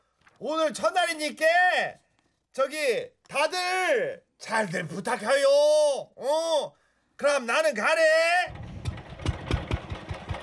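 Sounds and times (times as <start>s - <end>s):
speech: 0.4s - 2.0s, 2.6s - 8.6s
power tiller engine chugging: 8.5s - 10.4s.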